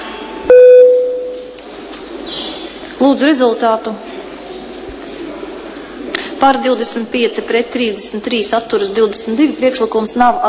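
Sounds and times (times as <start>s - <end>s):
parliament voting bell electronic chime: 0.5s - 1.4s
speech: 3.0s - 4.1s, 6.4s - 10.4s.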